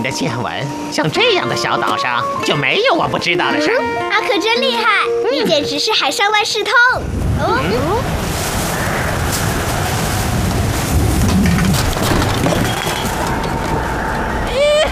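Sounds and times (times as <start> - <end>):
speech: 0.0 - 8.2
strong wind roaring across an open island: 7.0 - 14.9.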